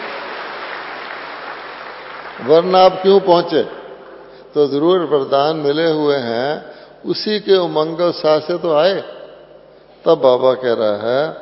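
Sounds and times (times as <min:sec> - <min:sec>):
audience clapping at a religious gathering: 0:00.0 - 0:04.4
speech: 0:02.4 - 0:03.8, 0:04.5 - 0:09.2, 0:10.0 - 0:11.4.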